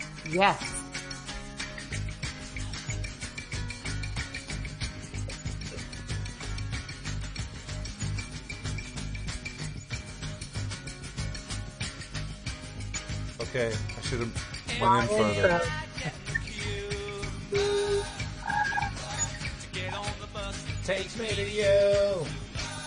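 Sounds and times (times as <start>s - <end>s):
speech: 0.2s - 0.8s, 13.5s - 16.2s, 20.9s - 22.4s
recorded hippie rock song with guitar-heavy instrumentation: 0.8s - 9.5s, 10.1s - 22.8s.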